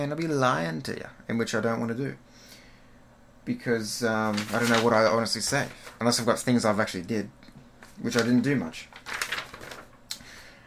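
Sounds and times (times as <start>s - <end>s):
speech: 0.0s - 2.5s, 3.4s - 7.4s, 8.0s - 9.2s
sheet of paper being handled and flipped over: 4.2s - 6.1s, 7.8s - 10.0s.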